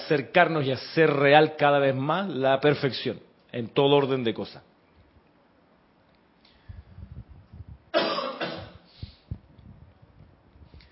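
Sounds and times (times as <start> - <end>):
speech: 0.1 - 4.7
person clearing throat: 8.0 - 8.9
person coughing: 8.0 - 8.9.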